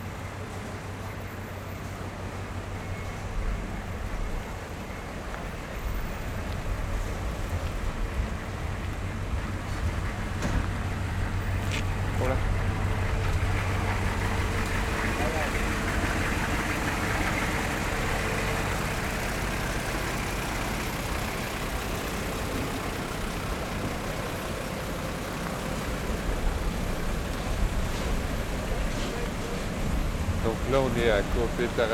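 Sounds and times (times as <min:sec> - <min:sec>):
truck engines idling in a queue: 0:00.0 - 0:31.9
speech: 0:30.8 - 0:31.9.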